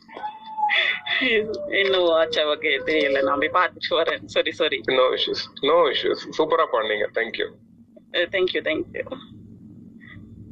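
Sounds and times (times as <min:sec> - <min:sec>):
puppy yelping: 0:00.0 - 0:03.6
faint voice murmuring: 0:00.0 - 0:07.5
speech: 0:01.2 - 0:09.4.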